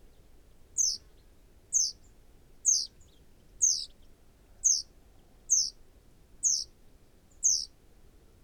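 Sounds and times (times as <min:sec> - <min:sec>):
quiet background noise: 0:00.0 - 0:08.4
Great tit Parus major high-pitched downslurred calls: 0:00.8 - 0:01.0, 0:01.7 - 0:02.0, 0:02.7 - 0:02.9, 0:03.6 - 0:03.9, 0:04.6 - 0:04.9, 0:05.5 - 0:05.8, 0:06.4 - 0:06.7, 0:07.4 - 0:07.7.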